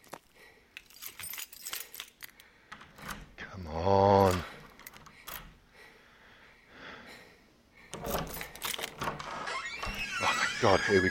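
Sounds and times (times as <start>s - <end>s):
bunch of keys jangling: 0.8s - 3.3s, 4.2s - 5.6s, 7.9s - 9.2s
speech: 10.6s - 11.0s.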